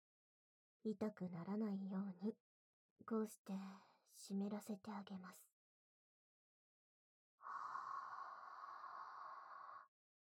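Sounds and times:
speech: 0.8s - 2.4s, 3.0s - 5.5s
slow hot breath exhaled: 7.4s - 9.9s.

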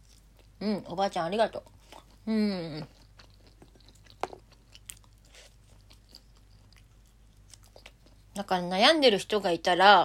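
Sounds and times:
chewing edamame with soft crunching bites: 0.0s - 0.6s, 1.6s - 2.2s, 2.8s - 8.4s
quiet steady hum: 0.0s - 10.0s
speech: 0.6s - 3.0s, 8.4s - 10.0s.

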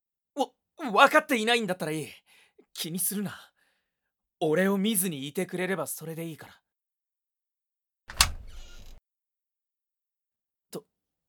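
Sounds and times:
speech: 0.9s - 2.2s, 2.8s - 3.5s, 4.4s - 6.6s
door opening with a sharp mechanical clack: 8.1s - 9.0s.

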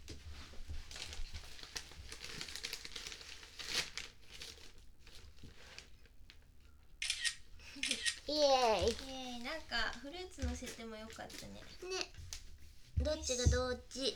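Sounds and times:
soft crinkling: 0.0s - 14.1s
camera shutter clicks photographing a pudding: 7.0s - 8.2s
speech: 8.3s - 12.2s, 13.0s - 14.1s.

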